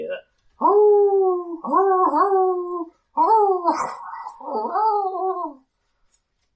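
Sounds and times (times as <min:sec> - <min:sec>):
pack of wolves howling excitedly: 0:00.6 - 0:05.6
speech: 0:03.7 - 0:04.8.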